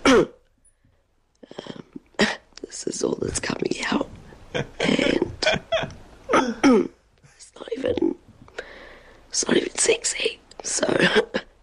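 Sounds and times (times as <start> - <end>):
person coughing performatively: 0.0 - 0.4, 4.6 - 7.0
speech: 0.1 - 0.4, 2.7 - 6.0, 9.4 - 11.4.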